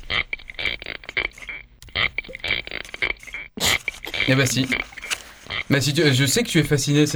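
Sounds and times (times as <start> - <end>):
spiny lobster rasps recorded by hydrophone underwater: 0.0 - 5.8
speech: 4.3 - 5.0, 5.7 - 7.1.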